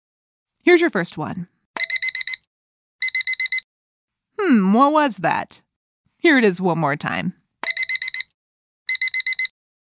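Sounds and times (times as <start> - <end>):
speech: 0.6 - 1.6, 4.4 - 5.6, 6.2 - 7.4
electronic alarm clock beeping: 1.8 - 3.7, 7.6 - 9.6.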